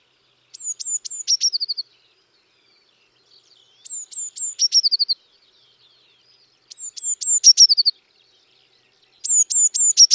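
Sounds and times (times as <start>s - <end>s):
Eurasian blue tit Cyanistes caeruleus giving high sharp descending notes and a trill: 0.5s - 1.8s, 3.8s - 5.2s, 6.7s - 7.9s, 9.2s - 10.1s.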